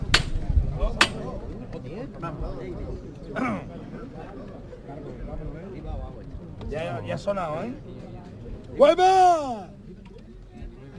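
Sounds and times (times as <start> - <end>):
murmur of crowd chatter: 0.0 - 10.9
sharp hammer strikes: 0.1 - 0.4
speech: 1.9 - 9.8.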